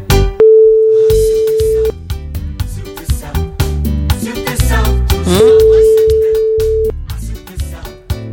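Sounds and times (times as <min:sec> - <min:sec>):
busy upbeat music: 0:00.1 - 0:08.3
phone ringback tone, steady mid-pitched hum: 0:00.4 - 0:01.9, 0:05.4 - 0:06.9.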